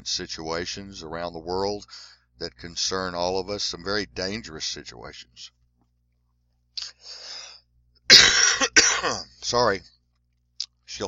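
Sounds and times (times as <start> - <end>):
speech: 0.0 - 5.6, 8.1 - 9.9
raspy coughs: 8.1 - 9.3.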